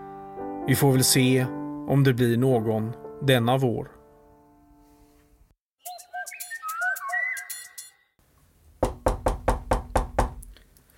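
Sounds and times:
speech: 0.7s - 4.0s
whistled bird-like tones: 5.8s - 8.1s
knocking on a studio door: 8.8s - 10.4s.

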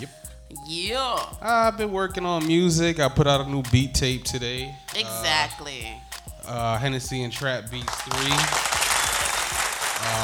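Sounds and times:
speech: 0.0s - 8.7s
group of people clapping: 7.8s - 10.2s.

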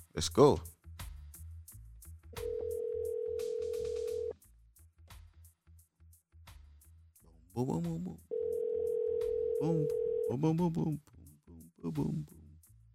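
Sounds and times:
speech: 0.2s - 0.7s, 7.6s - 8.3s, 9.6s - 11.1s, 11.8s - 12.4s
loud steady telephone ring tone: 2.4s - 4.3s, 8.3s - 10.4s.

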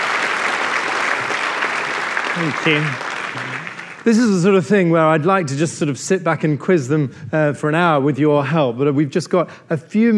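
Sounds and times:
audience applause: 0.0s - 4.5s
speech: 2.4s - 10.1s.

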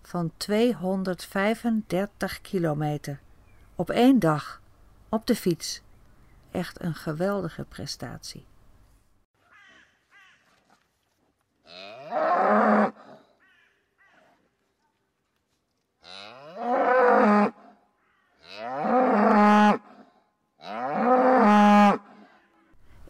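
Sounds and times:
speech: 0.1s - 3.2s, 3.8s - 5.9s, 6.5s - 8.5s
Friesian cows mooing in Friesland, the Netherlands: 11.7s - 13.1s, 18.4s - 19.9s, 20.6s - 22.1s.

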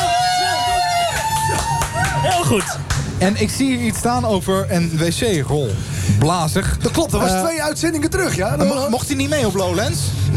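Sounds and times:
crowd cheering and applauding outdoors: 0.0s - 3.1s
speech: 2.5s - 10.3s.

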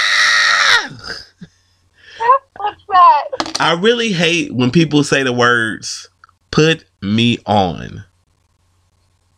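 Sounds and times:
person screaming in frustration: 0.0s - 1.0s
person grunting: 0.7s - 1.3s
speech: 3.6s - 8.1s.

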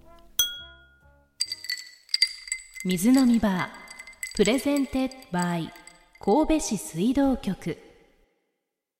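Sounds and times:
glasses of tap water clinking in a toast: 0.4s - 0.8s, 1.4s - 6.3s
speech: 2.8s - 3.8s, 4.4s - 7.8s.

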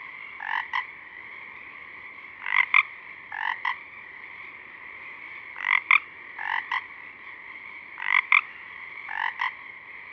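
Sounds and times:
Pacific chorus frog Pseudacris regilla calling at dusk: 0.0s - 10.1s.

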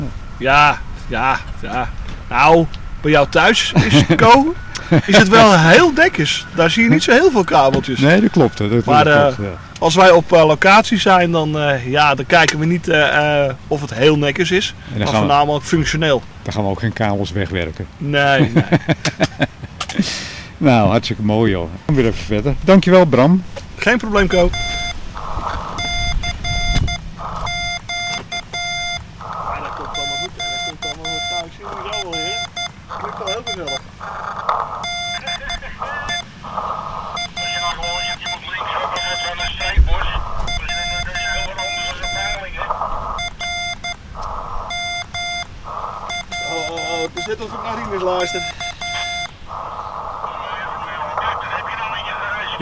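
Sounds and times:
Morse code CQ call radio tones: 0.0s - 16.0s, 23.8s - 52.5s
speech: 0.4s - 24.8s, 47.3s - 48.6s
laughter: 3.3s - 9.6s, 18.2s - 20.4s.

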